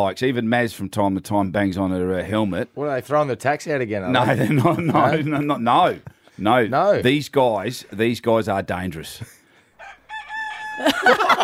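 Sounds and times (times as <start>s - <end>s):
speech: 0.0s - 9.4s, 10.8s - 11.4s
laughter: 4.1s - 6.2s, 10.8s - 11.4s
rooster crowing: 9.8s - 11.4s.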